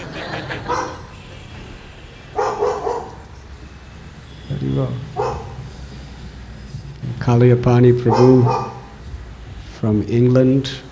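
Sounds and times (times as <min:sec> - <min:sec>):
laughter: 0:00.0 - 0:01.2
steady hum: 0:00.0 - 0:10.8
dog barking: 0:00.7 - 0:01.1, 0:02.3 - 0:03.2, 0:05.1 - 0:05.6, 0:08.0 - 0:09.0
speech: 0:04.6 - 0:05.2, 0:07.2 - 0:08.7, 0:09.8 - 0:10.8.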